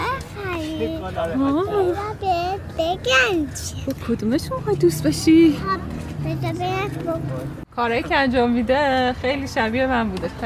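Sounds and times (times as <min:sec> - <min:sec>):
children playing in a park, chattering and shouting: 0:00.0 - 0:03.9, 0:05.4 - 0:07.6
steady outdoor noise: 0:00.0 - 0:10.4
speech: 0:00.8 - 0:10.4.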